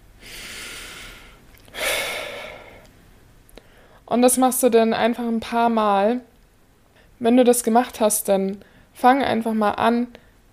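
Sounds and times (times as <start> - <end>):
deep breath: 0.2 - 2.9, 3.6 - 4.1
speech: 4.1 - 6.3, 7.2 - 10.2.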